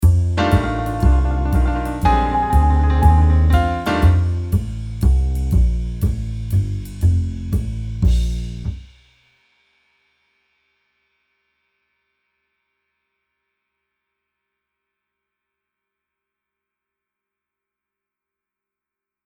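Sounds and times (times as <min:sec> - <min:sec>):
tremolo: 0:00.0 - 0:07.2.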